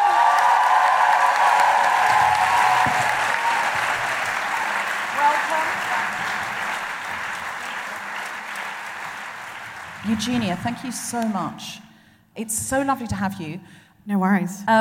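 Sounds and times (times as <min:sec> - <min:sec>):
audience cheering and whooping: 0:00.0 - 0:08.5
live audience applauding in Melbourne: 0:00.0 - 0:11.3
speech: 0:10.2 - 0:14.7.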